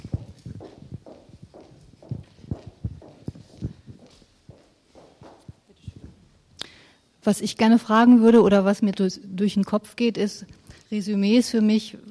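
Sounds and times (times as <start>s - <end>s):
footsteps of a person walking briskly across a room: 0.0s - 6.2s
speech: 7.3s - 12.0s.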